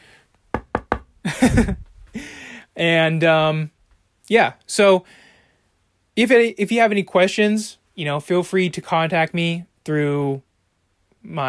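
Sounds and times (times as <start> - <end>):
knuckle raps on a wooden surface: 0.6 - 1.1
speech: 1.2 - 5.2, 6.2 - 10.5, 11.2 - 11.4.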